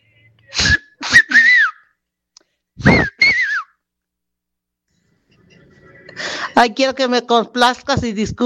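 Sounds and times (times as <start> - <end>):
person giving loud breathy whistles: 0.6 - 1.9, 2.8 - 3.8
speech: 6.6 - 8.4.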